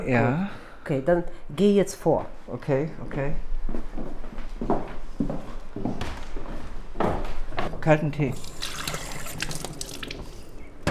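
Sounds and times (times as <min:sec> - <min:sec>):
speech: 0:00.0 - 0:04.8, 0:07.8 - 0:08.5
water running from a tap: 0:08.3 - 0:10.8.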